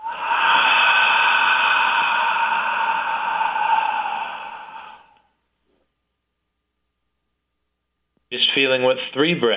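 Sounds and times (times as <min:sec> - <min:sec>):
long exhale through the mouth on an H sound during a breathing exercise: 0:00.0 - 0:05.3
speech: 0:08.6 - 0:09.5.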